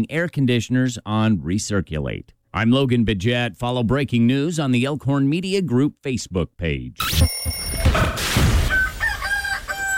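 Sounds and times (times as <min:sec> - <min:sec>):
speech: 0:00.0 - 0:08.5
rooster crowing: 0:08.5 - 0:09.9.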